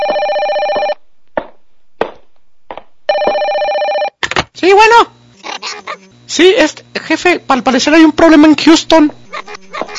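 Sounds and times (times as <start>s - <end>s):
telephone bell ringing: 0.0s - 1.0s, 3.1s - 4.2s
speech: 4.6s - 5.2s, 6.3s - 9.2s.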